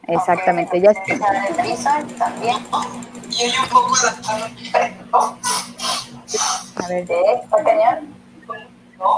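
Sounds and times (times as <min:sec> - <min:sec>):
faint steady hum: 0:00.0 - 0:09.1
thin tinny livestream voices echoing through a phone speaker: 0:00.0 - 0:09.1
speech: 0:00.1 - 0:05.6, 0:06.3 - 0:09.1.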